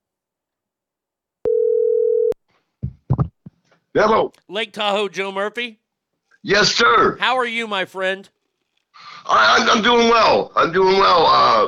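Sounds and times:
electronic telephone ringing tone on an outgoing call heard through the line: 0:01.4 - 0:02.4
speech: 0:03.9 - 0:05.8, 0:06.4 - 0:08.4, 0:09.0 - 0:11.6.

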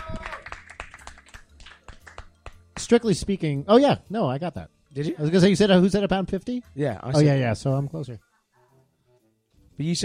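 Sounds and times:
small group hand clapping: 0:00.0 - 0:03.0
speech: 0:02.9 - 0:08.3, 0:09.8 - 0:10.0.

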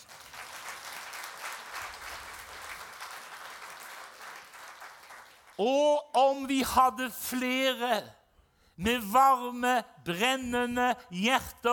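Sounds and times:
crowd applauding: 0:00.0 - 0:05.6
speech: 0:05.6 - 0:08.2, 0:08.8 - 0:11.7.

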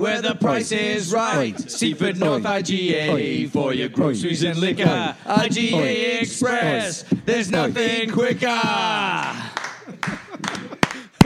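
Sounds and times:
speech: 0:00.0 - 0:10.2
laughter: 0:00.3 - 0:11.2
hand claps: 0:04.8 - 0:11.2.

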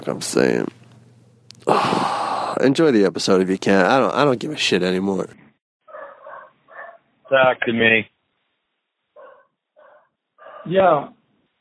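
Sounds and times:
speech: 0:00.0 - 0:00.8, 0:02.6 - 0:05.4, 0:07.3 - 0:08.1, 0:10.6 - 0:11.2
dog barking: 0:05.9 - 0:07.1, 0:09.2 - 0:10.7.

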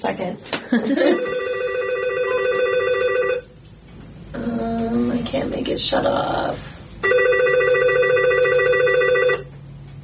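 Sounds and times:
speech: 0:00.0 - 0:01.5, 0:05.4 - 0:06.7
telephone ringing with electronic trilling tone: 0:01.0 - 0:03.5, 0:07.0 - 0:09.5.

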